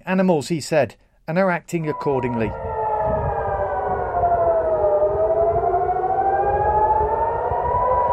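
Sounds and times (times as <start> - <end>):
speech: 0.1 - 2.7
air raid siren wailing: 1.8 - 8.1.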